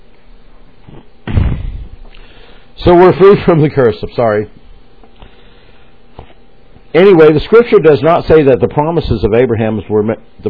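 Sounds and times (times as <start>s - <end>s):
door slamming shut: 1.3s - 1.8s
speech: 2.8s - 4.6s, 6.9s - 10.4s.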